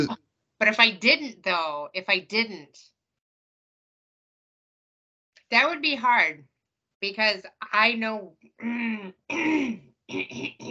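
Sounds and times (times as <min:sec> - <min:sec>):
speech: 0:00.0 - 0:02.9, 0:05.5 - 0:10.6
person clearing throat: 0:09.3 - 0:10.6.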